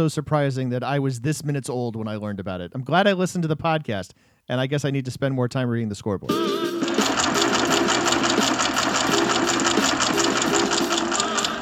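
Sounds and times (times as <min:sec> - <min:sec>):
speech: 0:00.0 - 0:07.0
music track: 0:06.3 - 0:11.6
ticker tape machine clattering: 0:06.8 - 0:11.6.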